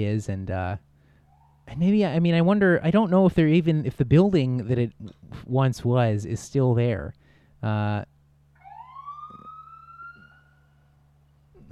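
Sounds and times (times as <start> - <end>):
speech: 0.0 - 0.9, 1.7 - 8.1
police car siren wailing: 1.3 - 1.7, 8.6 - 11.1.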